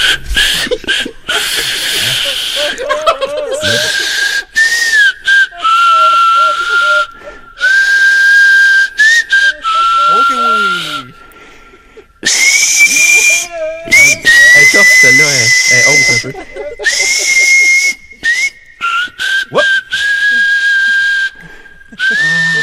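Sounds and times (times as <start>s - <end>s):
laughter: 0.0s - 4.7s, 5.6s - 7.5s, 15.6s - 18.3s, 21.9s - 22.6s
person whistling a Christmas carol: 3.6s - 11.2s, 12.2s - 22.6s.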